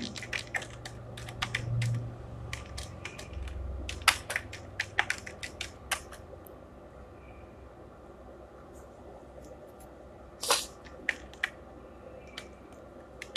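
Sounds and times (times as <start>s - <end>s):
typing text on a computer keyboard: 0.0s - 6.2s, 10.8s - 11.6s, 12.2s - 13.3s
steady low hum: 0.0s - 13.3s.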